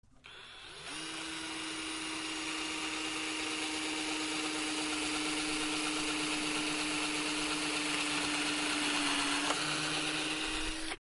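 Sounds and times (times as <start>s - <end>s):
cordless screwdriver: 0.2s - 10.9s.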